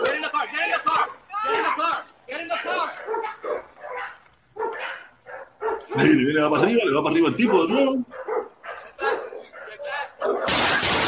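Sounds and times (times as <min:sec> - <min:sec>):
excited overlapping human shouting: 0:00.0 - 0:03.4
black dog barking in a played video: 0:01.0 - 0:01.8, 0:02.5 - 0:06.2, 0:07.3 - 0:10.7
speech: 0:06.0 - 0:08.2.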